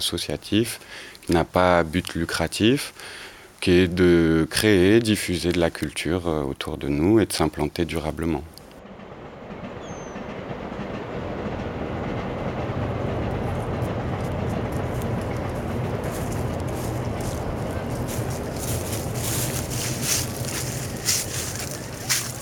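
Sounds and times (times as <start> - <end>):
speech: 0.0 - 8.6
train rumbling past outdoors: 7.8 - 22.3.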